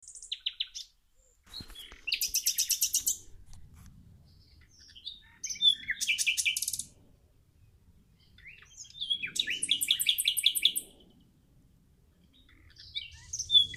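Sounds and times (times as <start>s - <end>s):
common nightingale Luscinia megarhynchos singing: 0.0s - 0.9s, 1.6s - 3.2s, 4.3s - 7.0s, 7.6s - 11.4s, 12.1s - 13.7s.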